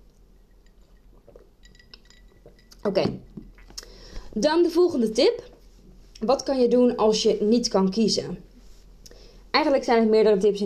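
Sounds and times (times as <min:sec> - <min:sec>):
faint clink of glass: 0:00.3 - 0:02.8
person sipping a drink from a glass with soft slurps: 0:00.7 - 0:02.8, 0:03.5 - 0:04.2
speech: 0:02.8 - 0:03.3, 0:04.4 - 0:05.5, 0:06.2 - 0:08.5, 0:09.5 - 0:10.6.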